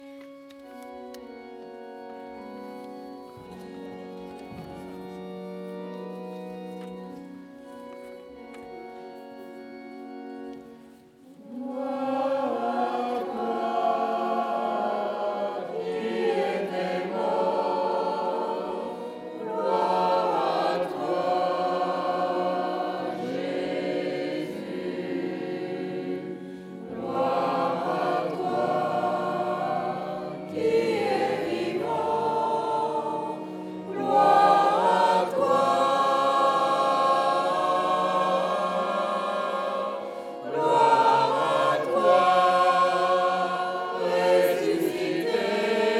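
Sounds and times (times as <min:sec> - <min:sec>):
choir singing: 0:11.2 - 0:45.9.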